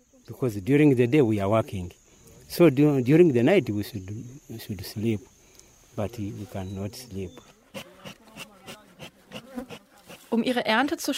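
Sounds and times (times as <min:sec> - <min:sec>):
speech: 0:00.3 - 0:05.4, 0:06.0 - 0:07.9, 0:10.3 - 0:11.1
many bees buzzing at a bee fence of beehives: 0:07.5 - 0:10.7.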